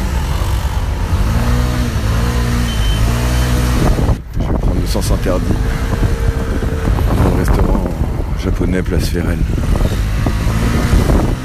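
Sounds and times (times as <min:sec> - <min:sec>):
scooters revving and turning around on a blocked street in Paris: 0:00.0 - 0:11.4
steady rumble of street traffic in Paris: 0:00.0 - 0:11.4
speech: 0:05.2 - 0:06.0, 0:08.4 - 0:09.8.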